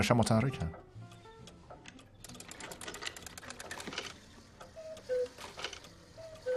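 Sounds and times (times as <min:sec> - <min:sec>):
speech: 0:00.0 - 0:00.9
antique cuckoo clock mechanism whirring and clattering: 0:01.1 - 0:06.5
antique cuckoo clock two-note cuckoo calls: 0:04.6 - 0:06.5.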